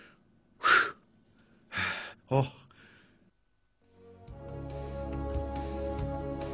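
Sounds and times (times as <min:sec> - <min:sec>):
person breathing rapidly after a workout: 0:00.0 - 0:03.3
steady tonal musical bed: 0:03.9 - 0:06.5.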